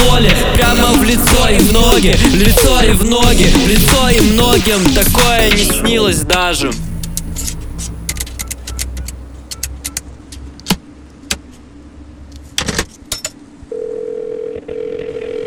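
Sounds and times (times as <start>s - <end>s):
low car engine rumble: 0.0s - 13.1s
speech: 1.1s - 6.9s
keys jingling: 7.0s - 10.5s
telephone dial tone from an unanswered interregional call: 13.7s - 15.4s.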